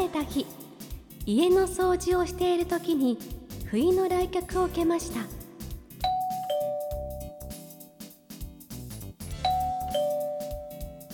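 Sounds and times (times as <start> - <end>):
steady music: 0.0 - 11.1
speech: 0.2 - 0.6, 1.3 - 5.4
two-note ding-dong intercom doorbell chime at a home in Ishikawa Prefecture Japan: 6.1 - 7.6, 9.4 - 11.1.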